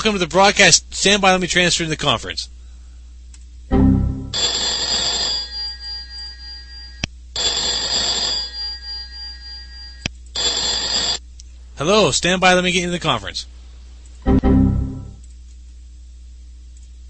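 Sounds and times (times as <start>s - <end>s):
speech: 0.0s - 2.6s, 11.8s - 13.5s
telephone ringing with an incoming call: 3.8s - 11.2s.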